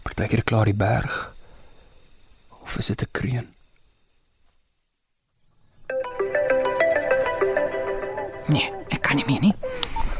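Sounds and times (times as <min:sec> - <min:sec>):
speech: 0:00.2 - 0:01.4, 0:02.8 - 0:03.6, 0:08.5 - 0:09.9
phone ringtone of an incoming call: 0:05.9 - 0:09.1.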